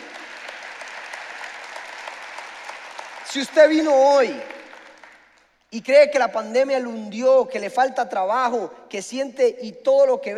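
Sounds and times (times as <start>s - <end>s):
audience applauding: 0.0s - 5.6s
speech: 3.3s - 4.6s, 5.7s - 10.3s.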